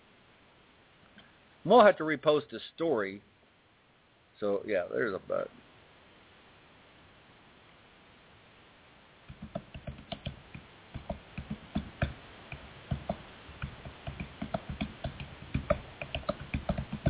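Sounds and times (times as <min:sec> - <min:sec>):
speech: 0:01.6 - 0:03.3, 0:04.4 - 0:05.7
fast typing on a computer keyboard: 0:09.3 - 0:17.0.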